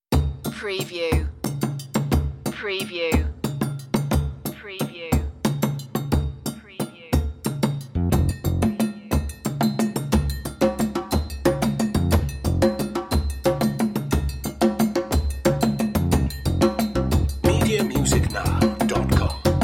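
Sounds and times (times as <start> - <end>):
drums: 0.0 - 19.6
bass: 7.8 - 8.8, 11.4 - 12.8, 15.4 - 19.6.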